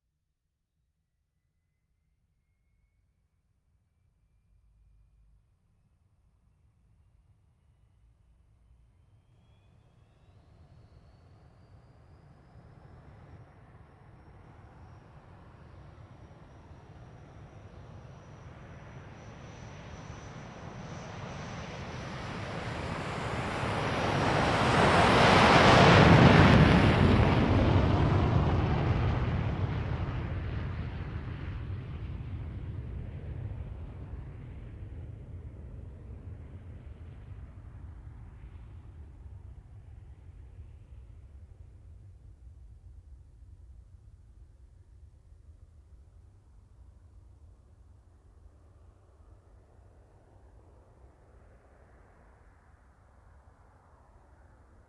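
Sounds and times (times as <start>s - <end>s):
MiG-15UTI jet aircraft taking off: 9.2s - 41.0s.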